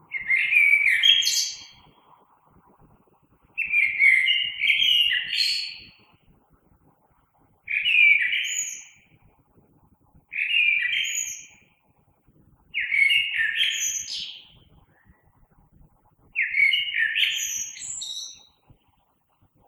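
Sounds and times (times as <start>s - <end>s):
common blackbird singing: 0.1s - 2.0s, 3.6s - 6.0s, 7.7s - 9.1s, 10.3s - 11.7s, 12.7s - 15.3s, 16.4s - 18.6s.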